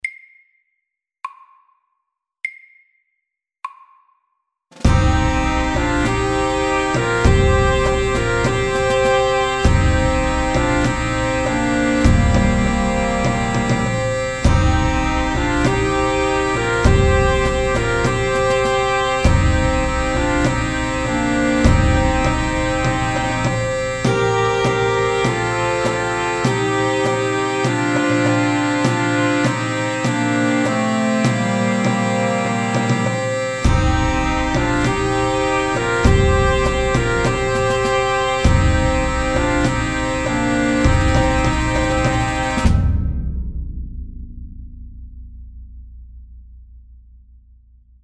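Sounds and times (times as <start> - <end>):
pipes and drums: 4.8 - 43.2.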